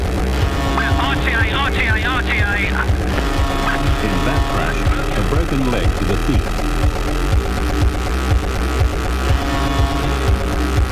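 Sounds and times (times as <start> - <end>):
police car engine roar at speed: 0.0 - 10.8
speech: 5.5 - 6.7.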